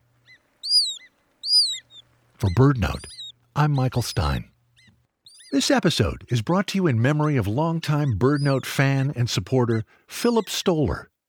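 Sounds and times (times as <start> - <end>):
Hudsonian Godwit descending whistles: 0.3 - 4.4, 5.3 - 6.2
speech: 2.4 - 4.5, 5.5 - 11.1.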